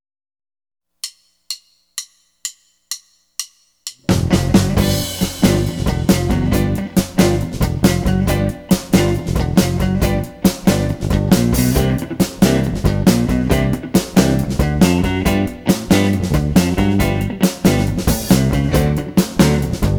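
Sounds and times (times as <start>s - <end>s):
funky blues in G: 4.0s - 19.9s.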